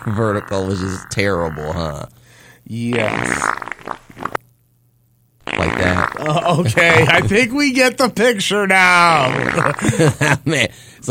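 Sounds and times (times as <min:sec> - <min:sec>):
voice imitating a long fart: 0:00.0 - 0:01.9, 0:02.9 - 0:04.4, 0:05.4 - 0:07.4, 0:09.1 - 0:09.9
speech: 0:00.0 - 0:03.6, 0:06.2 - 0:11.0
laughter: 0:06.3 - 0:07.4, 0:09.6 - 0:10.5.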